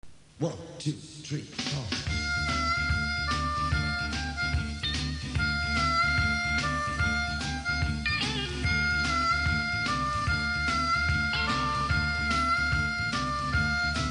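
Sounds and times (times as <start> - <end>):
harmonica: 2.1 - 14.1.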